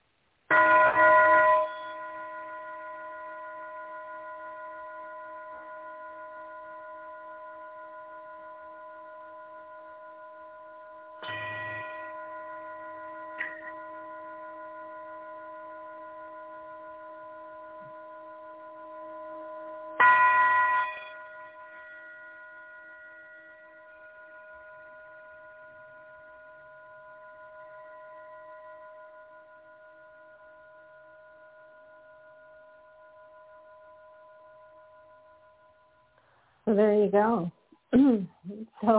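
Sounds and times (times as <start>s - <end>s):
large brass singing bowl struck and ringing: 0.5s - 36.4s
speech: 36.7s - 38.9s.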